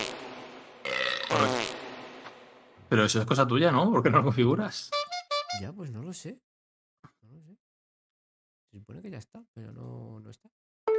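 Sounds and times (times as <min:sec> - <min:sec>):
fart sound: 0:00.0 - 0:02.3
speech: 0:02.9 - 0:06.5, 0:08.7 - 0:10.6.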